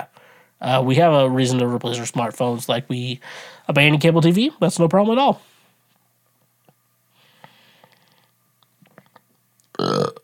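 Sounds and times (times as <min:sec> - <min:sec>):
speech: 0:00.6 - 0:05.5
burp: 0:09.7 - 0:10.2.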